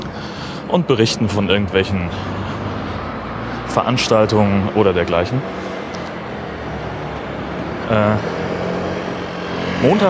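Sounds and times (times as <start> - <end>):
cars driving past on road: 0.0 - 10.0
speech: 0.7 - 2.5, 3.7 - 5.7, 7.9 - 8.4, 9.8 - 10.0.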